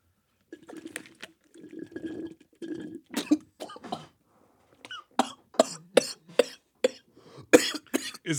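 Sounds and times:
buzzy slurping and sputtering through a straw: 0.4s - 4.9s
sharp coughing or gulping bursts: 0.6s - 4.2s, 4.8s - 8.3s.

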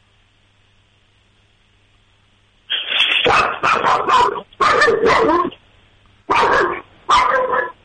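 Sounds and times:
dog barking: 3.2s - 5.6s, 6.3s - 7.8s.

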